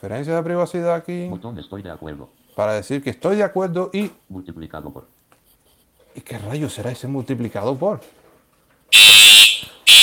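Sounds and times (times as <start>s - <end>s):
speech: 0.0s - 5.2s, 6.2s - 8.2s, 8.9s - 9.2s
loud shrill alarm: 8.9s - 10.0s.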